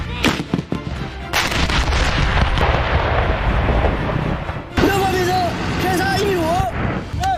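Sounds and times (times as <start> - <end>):
artillery guns firing during a live-fire drill: 0.2 - 4.9
rumbling noise: 0.3 - 7.2.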